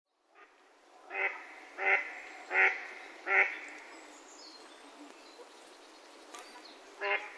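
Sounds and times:
mallard quacking: 1.1s - 3.5s, 7.0s - 7.3s.

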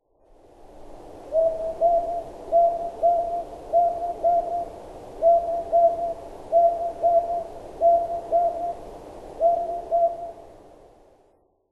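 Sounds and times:
Northern Boobook calling: 1.3s - 8.8s, 9.4s - 10.4s.

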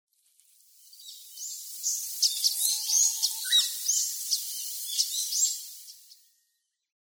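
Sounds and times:
Blyth's pipit calls: 1.0s - 6.2s.

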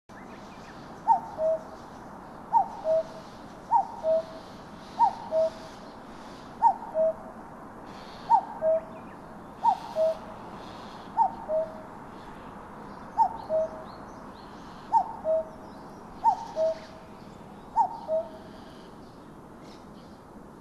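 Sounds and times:
common cuckoo calling in Kokubunji: 1.0s - 1.8s, 2.5s - 5.9s, 6.6s - 7.3s, 7.9s - 11.9s, 13.1s - 14.0s, 14.6s - 17.0s, 17.7s - 18.9s.

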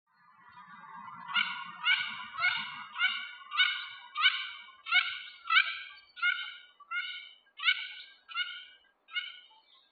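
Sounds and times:
Mandarin duck calling: 1.2s - 9.7s.

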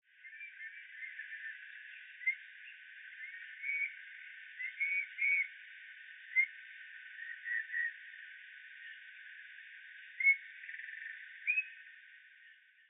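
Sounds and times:
Eurasian Bullfinch in Muroran: 0.2s - 9.3s, 9.9s - 12.6s.

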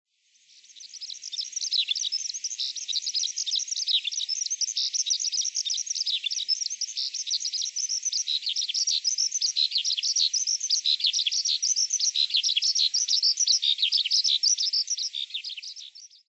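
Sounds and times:
skylark singing: 0.8s - 16.2s.

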